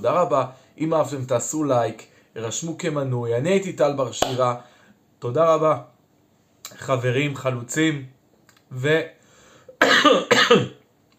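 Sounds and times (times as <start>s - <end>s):
speech: 0.0s - 5.9s, 6.7s - 9.2s, 9.8s - 10.8s
strong harsh coughs: 9.7s - 10.8s.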